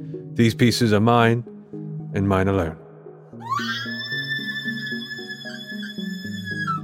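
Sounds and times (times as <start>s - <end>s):
speech: 0.0s - 1.5s, 2.1s - 2.8s
computer emitting a loud piercing electronic scream: 3.4s - 6.8s.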